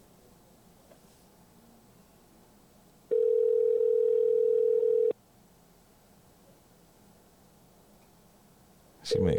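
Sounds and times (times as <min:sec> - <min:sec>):
telephone ringback tone: 0:03.1 - 0:05.1
speech: 0:09.2 - 0:09.3.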